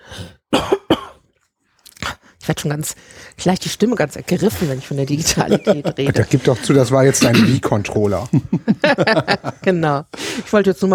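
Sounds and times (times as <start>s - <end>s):
harsh coughs: 0.5s - 1.3s, 6.1s - 7.9s
speech: 2.5s - 10.9s
laughter: 4.4s - 10.0s.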